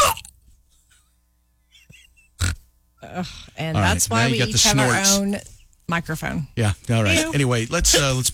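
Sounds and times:
hiccups: 0:00.0 - 0:00.3, 0:01.8 - 0:02.7
speech: 0:03.0 - 0:08.3.

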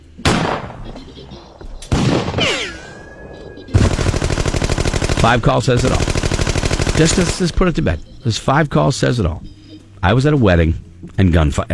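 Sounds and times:
celebratory gunshots fired into the air: 0:00.2 - 0:07.8
speech: 0:05.2 - 0:06.2, 0:07.0 - 0:11.7.

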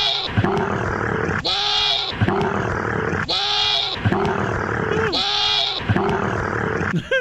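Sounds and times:
goat bleating: 0:00.0 - 0:00.6, 0:01.4 - 0:02.5, 0:03.2 - 0:06.4
camel grunting: 0:00.0 - 0:06.9.

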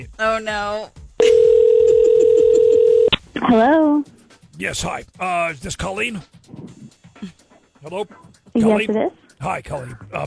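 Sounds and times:
speech: 0:00.0 - 0:01.4, 0:03.4 - 0:06.4, 0:07.2 - 0:10.2
telephone dial tone: 0:01.2 - 0:03.1.

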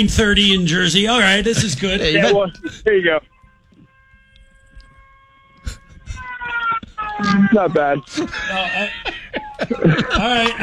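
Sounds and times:
laughter: 0:00.0 - 0:03.2, 0:05.6 - 0:10.6
speech: 0:00.0 - 0:03.3, 0:07.2 - 0:10.6
homemade siren being test fired: 0:00.0 - 0:10.6.

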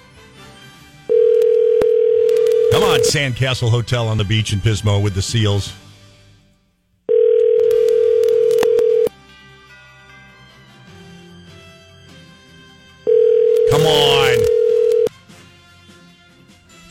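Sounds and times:
buzzing telephone ringback tone over the line: 0:01.1 - 0:03.1, 0:07.1 - 0:09.1, 0:13.1 - 0:15.1
speech: 0:03.0 - 0:05.8.

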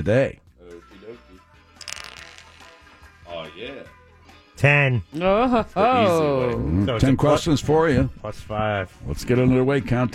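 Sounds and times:
speech: 0:00.0 - 0:00.4, 0:04.6 - 0:10.1
dice being rolled: 0:01.8 - 0:03.1.

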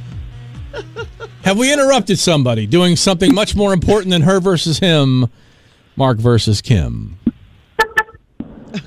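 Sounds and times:
laughter: 0:00.7 - 0:01.6
speech: 0:00.7 - 0:07.3
car horn beeps: 0:07.8 - 0:08.2.

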